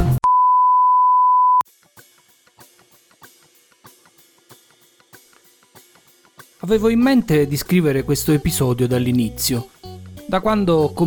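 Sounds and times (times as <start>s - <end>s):
long steady electronic beep at a constant pitch: 0.2s - 1.6s
speech: 6.7s - 11.0s.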